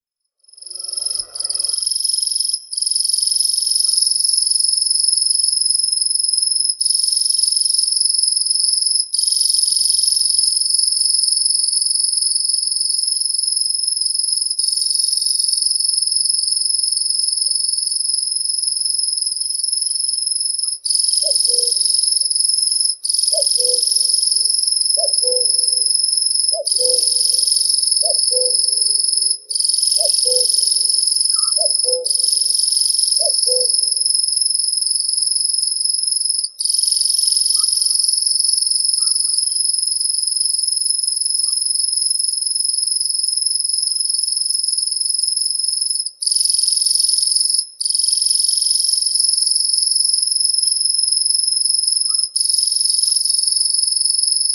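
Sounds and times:
Locustella naevia common grasshopper warbler reeling: 0.6s - 2.0s, 23.4s - 34.2s.

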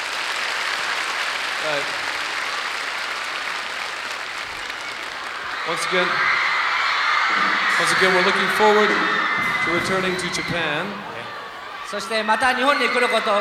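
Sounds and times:
audience applause at a concert in Japan: 0.0s - 13.3s
speech: 1.6s - 2.1s, 5.7s - 6.4s, 7.3s - 11.1s, 11.9s - 13.3s.

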